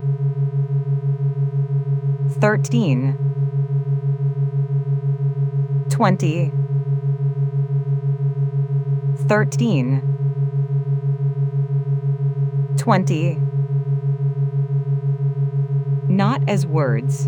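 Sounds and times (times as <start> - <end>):
steady electronic sine-wave hum with faint regular pulsing: 0.0 - 17.2
speech: 2.4 - 3.2, 6.0 - 6.6, 9.3 - 10.1, 12.8 - 13.4, 16.2 - 17.2.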